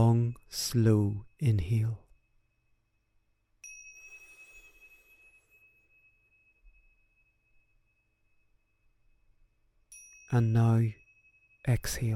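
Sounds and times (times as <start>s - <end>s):
speech: 0.0s - 2.0s, 10.3s - 11.0s, 11.6s - 12.1s
meditation chime ringing: 0.0s - 12.1s
soft shimmer: 0.0s - 12.1s.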